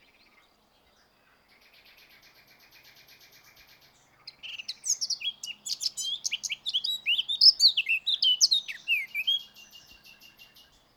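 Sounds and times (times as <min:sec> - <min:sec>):
Eurasian blackcap Sylvia atricapilla warbling song: 0:04.3 - 0:10.6.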